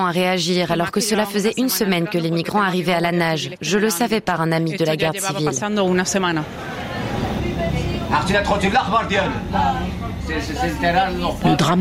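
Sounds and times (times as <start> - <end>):
speech: 0.0 - 6.8, 8.1 - 11.7
steady low bus engine rumble: 6.1 - 11.7.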